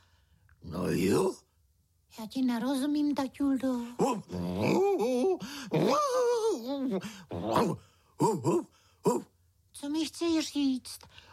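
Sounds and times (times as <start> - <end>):
speech: 0.6 - 1.4, 2.1 - 11.3
person imitating a dog with whining groaning sounds and bark-like yelps: 3.8 - 9.3.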